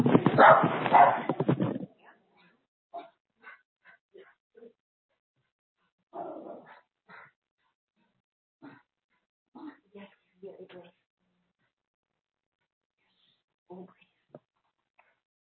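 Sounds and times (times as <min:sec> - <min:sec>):
dog barking: 0:00.3 - 0:01.4.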